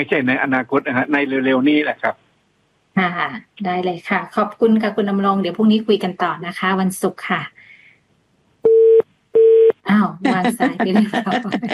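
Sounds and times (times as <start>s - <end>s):
speech: 0.0s - 2.2s, 3.0s - 7.6s, 9.9s - 11.7s
telephone line tone electronic beeps after a call-in is cut off: 8.7s - 9.8s
laughter: 10.2s - 11.7s.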